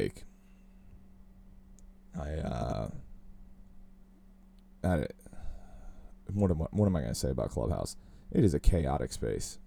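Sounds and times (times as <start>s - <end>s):
speech: 0.0s - 0.3s, 2.2s - 3.0s, 4.8s - 5.2s, 6.3s - 9.6s
person burping after drinking coffee: 2.2s - 3.0s.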